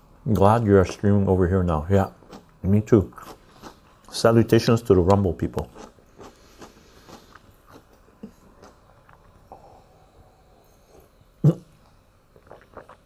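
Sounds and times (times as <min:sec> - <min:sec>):
speech: 0:00.2 - 0:03.4, 0:04.1 - 0:05.9
wet crunching and chewing of pickles and tomatoes: 0:02.1 - 0:03.9, 0:05.6 - 0:09.5, 0:12.4 - 0:13.0.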